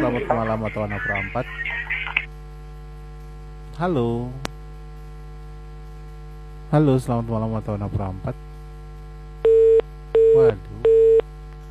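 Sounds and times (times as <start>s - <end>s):
speech: 0.1s - 1.9s, 3.8s - 4.5s, 6.7s - 8.4s, 10.3s - 10.7s
phone busy tone after a call line disconnects: 9.4s - 11.2s.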